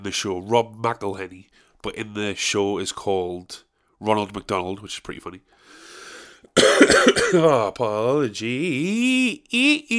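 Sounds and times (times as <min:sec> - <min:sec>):
speech: 0:00.0 - 0:05.8, 0:06.5 - 0:09.9
harsh cough: 0:06.6 - 0:07.7.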